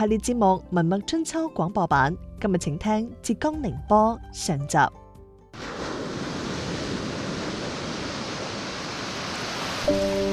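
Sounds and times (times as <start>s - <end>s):
speech: 0.0s - 5.0s
sea tide waves washing into coastal salt pans on Huaao Island in Xiangshan, Ningbo: 5.6s - 10.3s.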